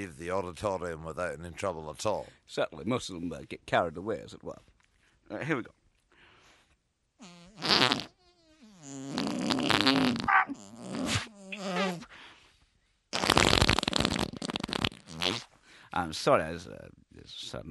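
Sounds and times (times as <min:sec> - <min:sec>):
speech: 0:00.0 - 0:04.7, 0:05.3 - 0:05.8, 0:07.2 - 0:08.1, 0:15.9 - 0:17.6
liquid fart: 0:07.2 - 0:12.0, 0:13.1 - 0:15.5.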